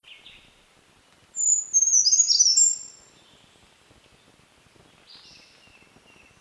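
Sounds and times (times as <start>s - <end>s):
Brown creeper Certhia americana nigrescens song: 0.0s - 0.6s, 1.4s - 6.3s.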